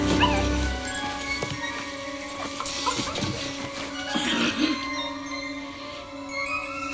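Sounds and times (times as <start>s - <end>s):
puppies whimpering and yipping: 0.0s - 6.9s.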